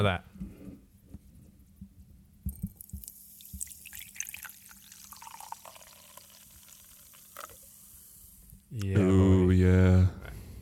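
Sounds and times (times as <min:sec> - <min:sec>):
speech: 0:00.0 - 0:00.3, 0:08.7 - 0:10.2
small drips and gurgles: 0:02.5 - 0:08.0
liquid pouring into a container: 0:02.5 - 0:08.6.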